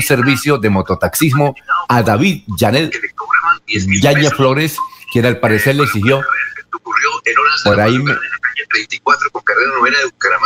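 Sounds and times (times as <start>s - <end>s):
speech: 0.0s - 10.4s
voice speaking over a band-limited telephone line with echo: 2.8s - 10.4s.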